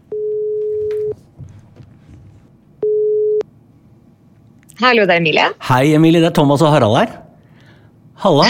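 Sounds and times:
phone ringback tone beeps: 0.1s - 1.2s, 2.8s - 3.4s
speech: 4.8s - 7.2s, 8.2s - 8.4s.

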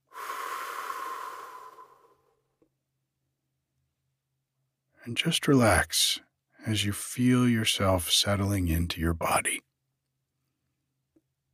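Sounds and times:
deep breath drawn in and let out slowly: 0.0s - 2.5s
speech: 5.0s - 9.7s.

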